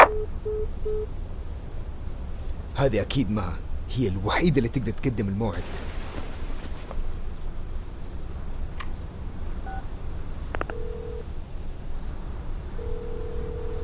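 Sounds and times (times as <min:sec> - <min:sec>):
mobile phone ringing with electronic beeps: 0:00.0 - 0:01.1, 0:10.6 - 0:11.2, 0:12.8 - 0:13.8
constant rumbling noise: 0:00.0 - 0:13.8
speech: 0:02.8 - 0:05.9.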